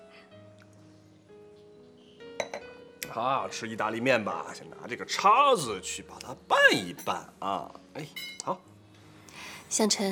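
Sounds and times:
glasses clinking together in a toast: 2.4s - 2.8s, 8.1s - 8.5s
speech: 3.1s - 8.7s, 9.7s - 10.1s.

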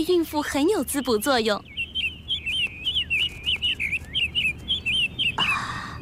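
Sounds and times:
speech: 0.0s - 1.8s
small caged bird chirping: 0.0s - 6.0s.

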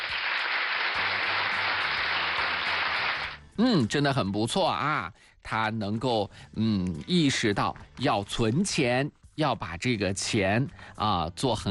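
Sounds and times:
crowd applauding: 0.0s - 3.4s
speech: 3.6s - 11.6s.

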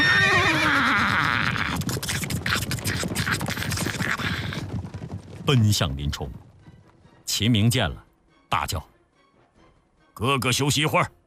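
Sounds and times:
yellow-dun horse whinnying: 0.0s - 4.8s
yellow-dun horse hooves scuffing while charging: 1.9s - 7.5s
speech: 5.5s - 6.5s, 7.4s - 8.9s, 10.2s - 11.2s.

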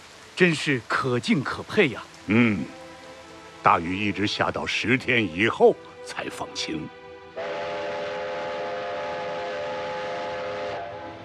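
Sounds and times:
speech: 0.4s - 2.8s, 3.6s - 7.0s
long sustained train steam whistle: 7.4s - 11.2s
train rumbling on railway tracks: 7.4s - 11.2s.

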